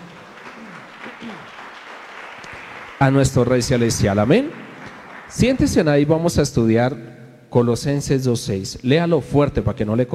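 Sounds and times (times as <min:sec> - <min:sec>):
church congregation applauding during a service: 0:00.0 - 0:06.3
speech: 0:01.2 - 0:01.6, 0:03.0 - 0:04.6, 0:05.3 - 0:10.1.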